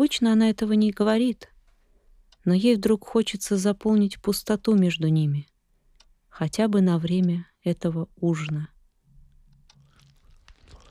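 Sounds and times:
speech: 0.0 - 1.5, 2.4 - 5.5, 6.4 - 8.7
wet crunchy chewing of food: 9.5 - 10.8.

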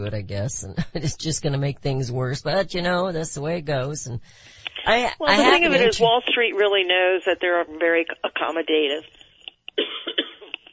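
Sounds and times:
speech: 0.0 - 9.2
raspy cough: 9.8 - 10.7.

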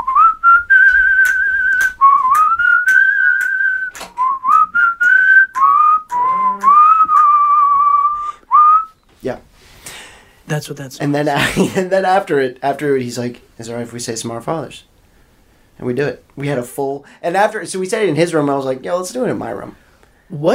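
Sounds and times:
person whistling a lively bouncy jazz tune in an apartment: 0.0 - 9.0
speech: 10.6 - 14.9, 15.8 - 20.5.

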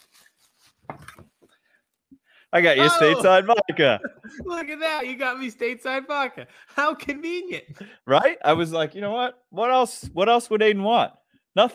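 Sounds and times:
tissue paper rustling as it is pulled from a gift box: 0.0 - 1.5
speech: 2.5 - 11.7
laughter: 2.8 - 5.2.

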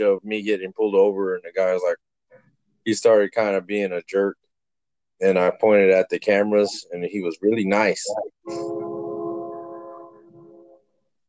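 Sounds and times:
speech: 0.0 - 2.0, 2.8 - 4.4, 5.2 - 8.8
train horn blast: 8.4 - 10.9.

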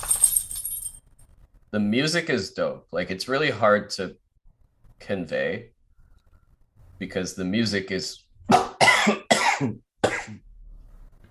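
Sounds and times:
speech: 1.7 - 4.2, 5.0 - 5.7, 7.0 - 10.4
person recovering from a cold coughing: 8.5 - 10.4.

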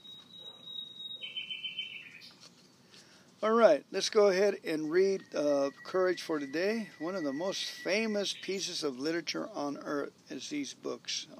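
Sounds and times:
nightingale singing: 0.0 - 2.4, 4.8 - 9.0
speech: 3.4 - 11.3.

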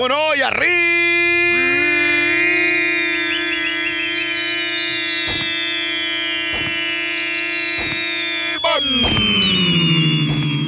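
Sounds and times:
speech: 0.0 - 1.0
loud steady electronic alarm-like tone bending downward: 0.8 - 10.6
gunshot sound effects: 5.2 - 5.6, 6.5 - 6.8, 7.7 - 8.2, 8.9 - 9.5.

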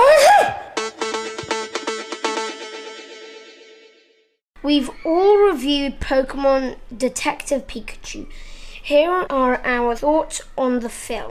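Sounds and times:
person sneezing: 0.0 - 0.7
bright bouncy musical jingle with repeating rhythmic chords: 0.8 - 3.4
speech: 4.6 - 11.2.

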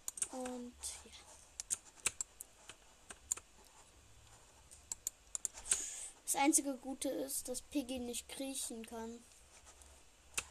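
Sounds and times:
computer keyboard keys clicking during video game play: 0.0 - 0.6, 1.6 - 2.3, 4.9 - 5.8
speech: 0.3 - 1.4, 6.3 - 9.3.

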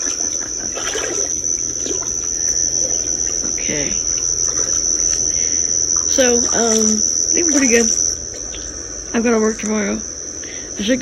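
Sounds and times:
water splashing in a lake: 0.0 - 8.8
speech: 3.7 - 4.0, 6.2 - 8.0, 9.1 - 10.1, 10.8 - 11.0.

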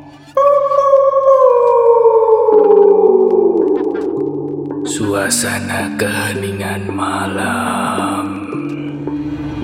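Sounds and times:
steady low hum: 0.0 - 9.0
dog howling in a long wail: 0.4 - 4.9
speech: 5.2 - 8.4.

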